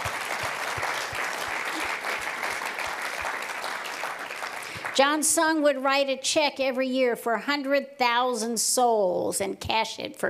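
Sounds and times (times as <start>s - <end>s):
audience applause at a preaching event: 0.0s - 5.2s
speech: 5.0s - 10.2s.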